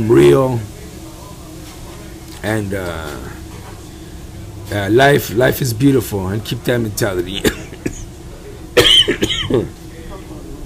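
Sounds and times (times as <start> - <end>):
speech: 0.0 - 0.7, 2.4 - 3.4, 4.7 - 7.6, 9.5 - 9.8
sharp cough: 7.4 - 8.1, 8.8 - 9.7.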